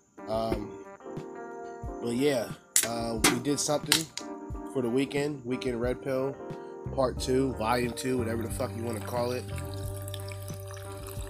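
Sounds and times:
speech: 2.0s - 9.8s
energy drink being poured into a cup: 8.6s - 11.2s.

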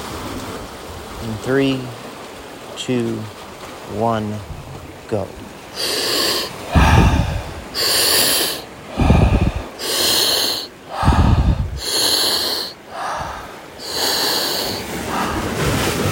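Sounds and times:
speech: 1.2s - 2.0s, 2.8s - 6.0s
loud rhythmic forceful breathing during a breathwork exercise: 5.8s - 16.0s.

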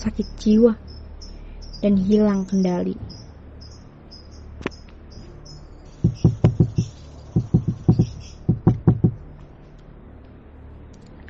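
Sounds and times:
speech: 0.0s - 0.8s, 1.8s - 3.1s
faint insect chirping: 0.0s - 9.3s
heavy knocking on a bedroom door: 6.0s - 9.2s.

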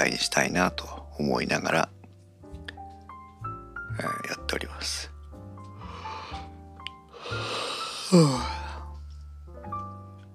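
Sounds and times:
speech: 0.0s - 2.0s, 4.0s - 5.1s, 8.1s - 8.6s
person yawning: 7.4s - 8.8s.

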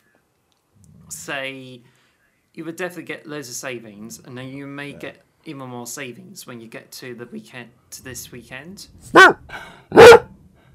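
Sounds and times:
speech: 1.2s - 2.0s, 2.6s - 10.2s
sharp dog bark: 9.1s - 10.3s.

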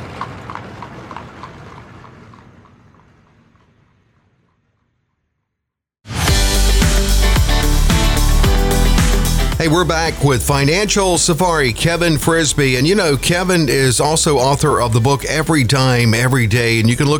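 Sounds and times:
horse hooves clip-clopping at a trot pulling a buggy: 0.0s - 4.9s
loud music: 6.1s - 17.0s
speech: 9.6s - 17.1s.

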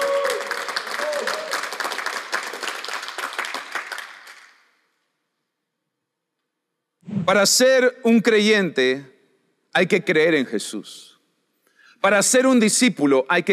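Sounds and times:
crowd clapping: 0.0s - 4.9s
speech: 7.3s - 9.1s, 9.8s - 11.1s, 12.0s - 13.5s.

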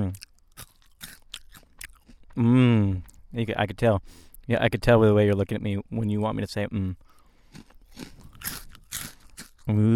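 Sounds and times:
Cheeto cheese puff being bitten and chewed: 0.1s - 2.4s, 7.0s - 9.9s
speech: 3.4s - 7.7s, 9.7s - 9.9s.

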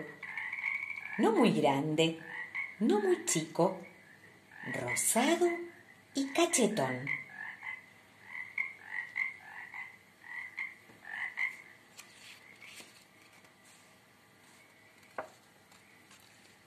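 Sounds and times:
speech: 0.0s - 0.3s, 1.2s - 3.9s, 4.6s - 7.2s
chorus of toads croaking in a lagoon: 0.0s - 11.8s.

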